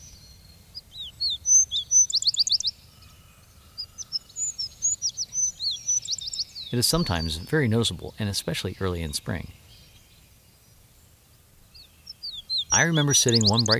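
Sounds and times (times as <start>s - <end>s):
wood sparrow singing whistled notes: 0.0s - 13.7s
speech: 6.7s - 9.6s, 12.8s - 13.7s.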